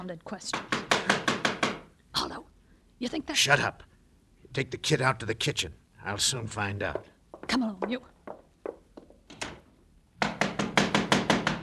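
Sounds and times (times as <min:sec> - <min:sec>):
speech: 0:00.0 - 0:01.2, 0:02.2 - 0:03.9, 0:04.5 - 0:08.1
heavy pounding knocks on a door: 0:00.5 - 0:01.8, 0:10.2 - 0:11.6.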